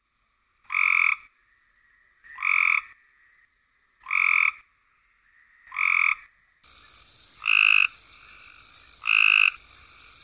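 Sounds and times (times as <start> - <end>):
Cope's Gray Treefrog in spring: 0.7 - 1.3, 2.2 - 3.1, 4.0 - 10.2.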